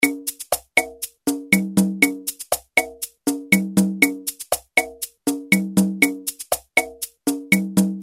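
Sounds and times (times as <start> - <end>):
Roland R-8 drum machine rhumba rhythm: 0.0 - 8.0.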